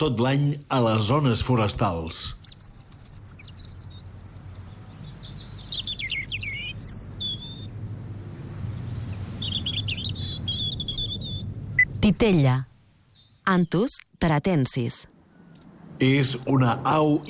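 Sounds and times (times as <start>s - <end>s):
speech: 0.0s - 2.6s, 12.1s - 12.7s, 13.5s - 15.1s, 16.0s - 17.2s
European robin singing a thin high warbling song: 0.0s - 17.2s
steady low rumble of noise: 0.0s - 17.2s.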